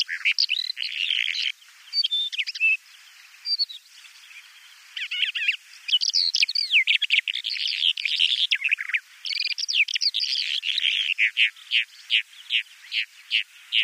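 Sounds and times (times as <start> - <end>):
Bimaculated lark song of buzzy and whistled notes: 0.0 - 13.8
speech: 11.4 - 13.8.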